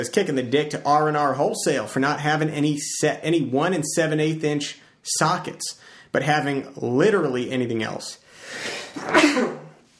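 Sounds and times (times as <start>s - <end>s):
speech: 0.0s - 9.6s
person sneezing: 8.5s - 9.8s.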